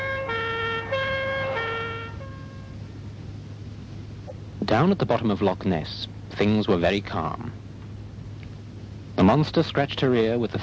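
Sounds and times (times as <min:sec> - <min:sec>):
police car sirens wailing on a road: 0:00.0 - 0:02.6
low engine rumble: 0:00.0 - 0:10.6
speech: 0:04.7 - 0:07.6, 0:09.2 - 0:10.6.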